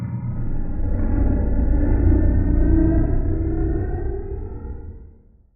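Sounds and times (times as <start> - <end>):
dark ghostly transition stab production element: 0.2 - 5.5.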